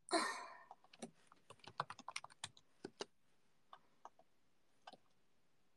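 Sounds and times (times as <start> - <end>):
computer keyboard typing during a typing game: 0.7 - 5.2.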